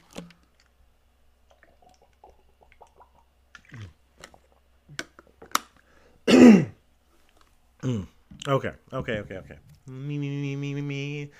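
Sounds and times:
person gulping water: 1.5s - 5.6s
wet mouth clicks: 1.5s - 5.6s
speech: 6.4s - 6.7s, 8.5s - 11.3s.

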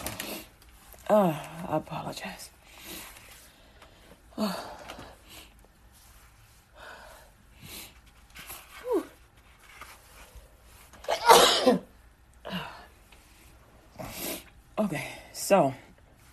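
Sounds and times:
speech: 1.1s - 3.0s, 4.4s - 4.8s, 14.9s - 15.8s
person sneezing from allergies: 11.0s - 11.9s
person coughing from allergies: 11.1s - 11.9s.

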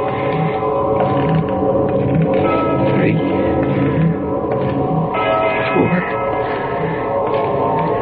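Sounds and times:
dense continuous background: 0.0s - 8.0s
church bell striking the hour: 2.4s - 8.0s.

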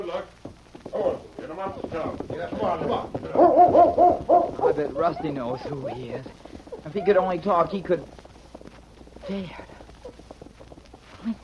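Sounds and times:
voices murmuring: 0.0s - 11.4s
speech: 0.1s - 0.4s, 1.0s - 8.2s, 9.3s - 9.7s, 11.2s - 11.4s
dog barking in short excited bursts: 3.4s - 6.1s.

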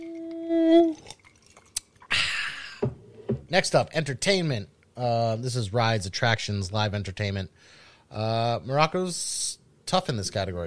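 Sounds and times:
person humming: 0.0s - 1.0s
speech: 3.5s - 10.6s.

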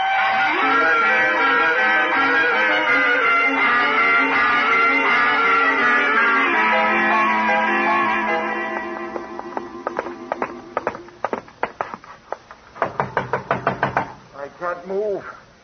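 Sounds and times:
humming tonal background: 0.0s - 13.4s
loud sharp knocking on a locked door: 12.8s - 14.2s.

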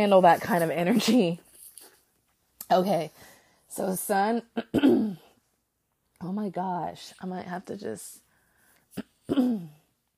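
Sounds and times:
speech: 0.0s - 1.4s, 2.7s - 5.2s, 6.2s - 8.2s, 9.0s - 9.8s
person clearing throat: 4.6s - 5.3s, 9.0s - 9.8s.

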